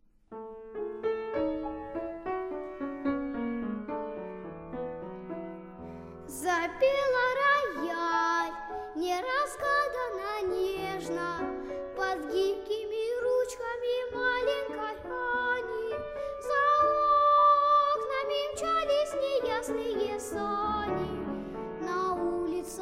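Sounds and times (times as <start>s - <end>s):
piano: 0.0s - 22.7s
child singing: 6.3s - 21.2s, 21.8s - 22.7s.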